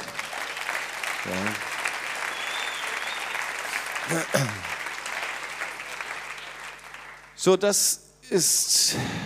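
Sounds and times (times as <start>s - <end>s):
audience applause: 0.0s - 7.5s
speech: 1.2s - 1.7s, 4.1s - 4.7s, 7.4s - 9.2s.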